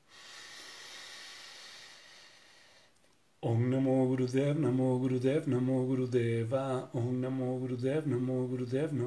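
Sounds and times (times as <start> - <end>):
long deep inhalation before chanting: 0.0 - 3.0
speech: 3.4 - 9.0.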